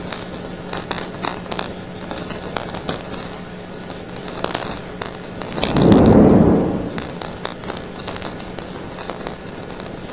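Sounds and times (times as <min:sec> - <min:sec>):
car passing: 0:05.7 - 0:07.3.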